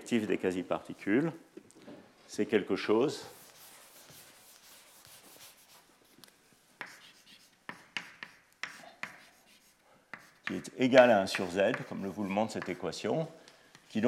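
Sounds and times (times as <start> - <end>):
speech: 0.1 - 1.7, 2.3 - 3.4, 10.5 - 14.0
writing on a board during a lecture: 3.3 - 6.2, 6.8 - 13.0.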